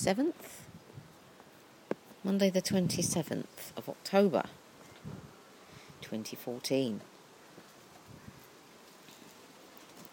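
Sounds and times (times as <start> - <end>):
speech: 0.0 - 0.7, 2.2 - 5.2, 6.0 - 7.1
leaves rustling in the wind: 0.0 - 10.1
wind blowing outdoors on a very windy partly sunny day: 0.0 - 10.1.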